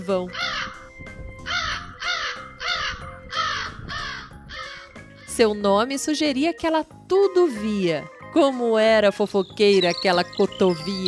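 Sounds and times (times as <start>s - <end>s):
speech: 0.0s - 0.4s, 5.4s - 11.0s
crow cawing: 0.3s - 0.8s, 1.5s - 5.3s.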